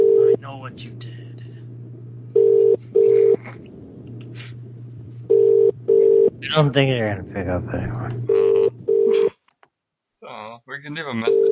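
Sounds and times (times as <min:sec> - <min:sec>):
ringing tone of an outgoing call through an internet calling service: 0:00.0 - 0:00.4, 0:02.4 - 0:03.3, 0:05.3 - 0:06.3, 0:08.3 - 0:09.3, 0:11.3 - 0:11.5
low hum: 0:00.0 - 0:09.3
speech: 0:00.5 - 0:01.2, 0:02.8 - 0:03.8, 0:06.5 - 0:08.4, 0:10.8 - 0:11.5.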